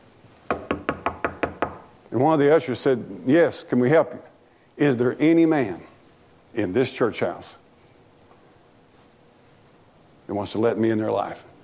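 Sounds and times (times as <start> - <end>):
knocking on a wooden door: 0.5 - 1.9
speech: 2.1 - 5.9, 6.5 - 7.6, 10.3 - 11.5.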